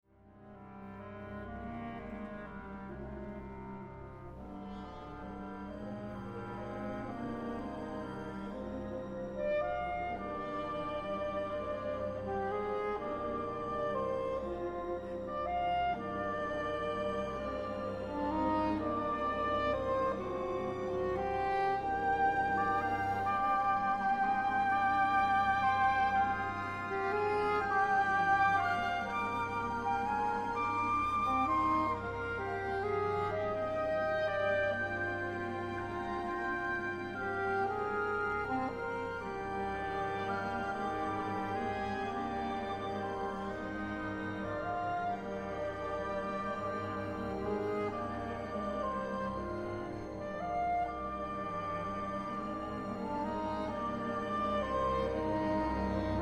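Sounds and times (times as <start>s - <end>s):
saxophone concerto: 0.7s - 56.2s.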